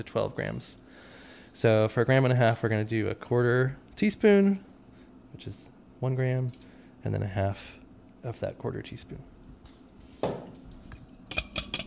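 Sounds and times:
speech: 0.0 - 0.8, 1.6 - 4.7, 5.4 - 9.3
metal whisk clinking against a bowl while stirring dry yeast: 11.3 - 11.8.

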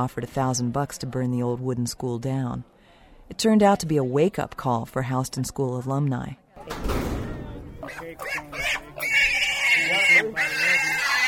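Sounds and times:
speech: 0.0 - 2.7, 3.3 - 7.1
pigs squealing at a greased pig contest: 7.8 - 11.2.

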